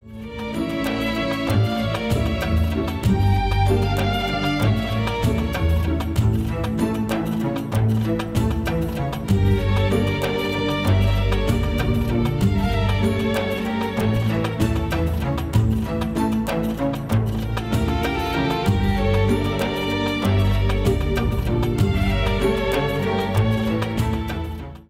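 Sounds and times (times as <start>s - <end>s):
cello: 0.0s - 24.8s.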